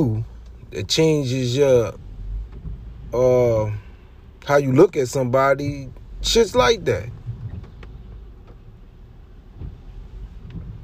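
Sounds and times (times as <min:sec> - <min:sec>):
speech: 0:00.0 - 0:02.0, 0:03.1 - 0:03.8, 0:04.4 - 0:07.2
low truck engine and road rumble: 0:00.0 - 0:10.8
truck windshield wipers running in rain: 0:00.0 - 0:10.8.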